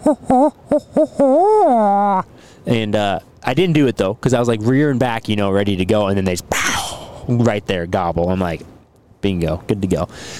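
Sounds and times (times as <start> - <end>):
person imitating owl hoots in a field: 0.0 - 2.3, 6.5 - 7.3
speech: 0.1 - 10.3.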